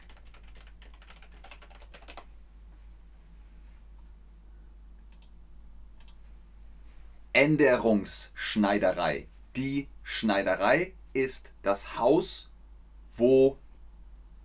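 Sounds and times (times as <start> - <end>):
faint typing on a computer keyboard: 0.0 - 2.3
steady low hum: 0.0 - 14.4
speech: 7.4 - 12.5, 13.2 - 13.6.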